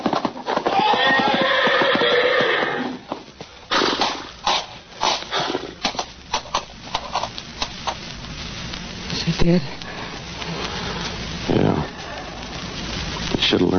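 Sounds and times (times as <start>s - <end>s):
horse hooves thudding and stamping: 0.0s - 13.7s
horse in a stall whinnying: 0.4s - 3.0s
speech: 9.4s - 9.8s.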